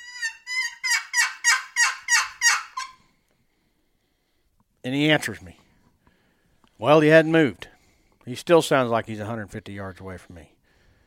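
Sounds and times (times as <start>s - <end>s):
turkey yelps made by a hunter on a call: 0.0s - 3.0s
speech: 4.8s - 5.6s, 6.8s - 10.6s.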